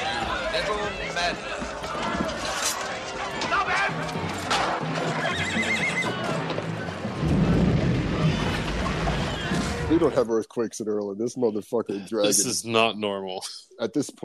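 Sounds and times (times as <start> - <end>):
speech: 0.6 - 2.1, 9.9 - 14.2
galloping hooves clattering: 0.6 - 9.9
horse whinnying: 5.0 - 6.4.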